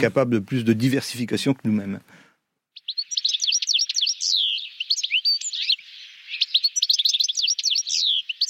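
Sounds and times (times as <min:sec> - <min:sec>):
speech: 0:00.0 - 0:02.2
European goldfinch song of tinkling twitters and trills: 0:02.7 - 0:08.4.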